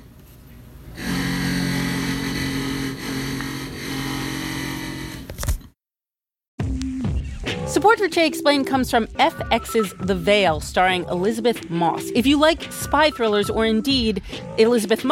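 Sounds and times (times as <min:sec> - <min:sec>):
power drill whirring: 0:01.0 - 0:05.4
speech: 0:07.7 - 0:15.1.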